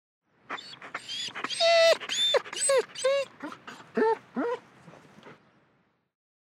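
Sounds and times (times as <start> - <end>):
dog whimpering: 0.5 - 4.6.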